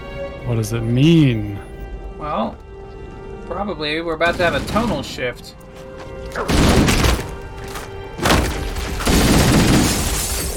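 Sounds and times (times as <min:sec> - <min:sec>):
steady video game music: 0:00.0 - 0:10.5
speech: 0:00.5 - 0:02.6, 0:03.5 - 0:06.8
glass exploding beneath a shot enemy in a video game: 0:09.8 - 0:10.5.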